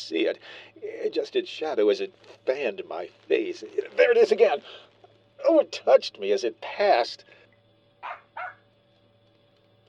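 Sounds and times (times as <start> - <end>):
speech: 0.0 - 7.4
faint low hum: 0.0 - 9.8
dog barking: 8.0 - 8.6.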